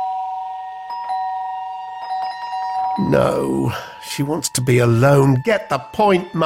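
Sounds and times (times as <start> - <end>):
electronic doorbell at a front door chiming: 0.0 - 3.0
speech: 3.0 - 6.4.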